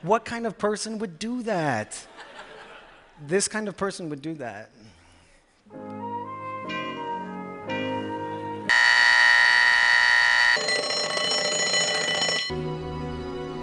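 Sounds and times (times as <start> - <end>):
speech: 0.0 - 2.4, 3.2 - 4.9
laughter: 1.9 - 3.2
alarm clock ringing with electronic tones and harsh buzzing: 8.7 - 12.6.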